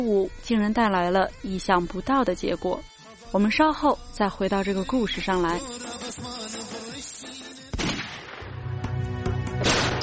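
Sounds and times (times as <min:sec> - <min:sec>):
speech: 0:00.0 - 0:05.8
sharp gunshots with a booming echo: 0:07.7 - 0:08.5, 0:09.6 - 0:10.0.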